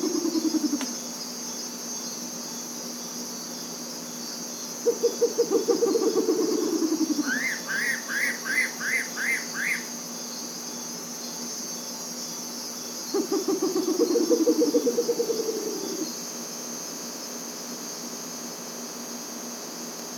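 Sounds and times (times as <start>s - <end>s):
bare-legged owl giving low rapid trills: 0.0s - 0.8s, 4.8s - 9.9s, 13.1s - 16.1s
insect buzz: 0.0s - 20.1s.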